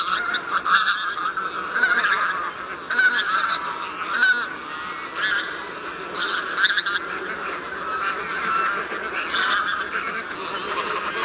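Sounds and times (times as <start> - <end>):
flock of bean geese honking: 0.0 - 11.2.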